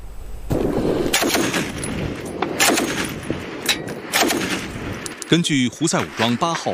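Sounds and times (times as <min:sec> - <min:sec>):
dense gunfire in fighting between government and Houthi forces in Taiz province Yemen: 0:00.5 - 0:05.0
speech: 0:05.3 - 0:06.7.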